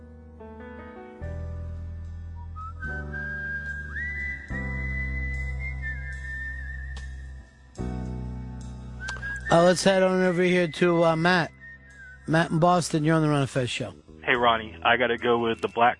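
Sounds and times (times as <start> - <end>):
whistled melody: 2.3 - 7.8, 8.8 - 13.5
speech: 9.5 - 11.6, 12.3 - 15.9.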